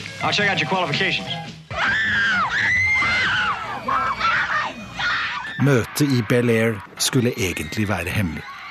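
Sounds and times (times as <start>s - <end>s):
speech: 0.2s - 2.3s, 5.6s - 8.5s
crowd of fans shrieking in high piercing bursts: 1.7s - 8.6s.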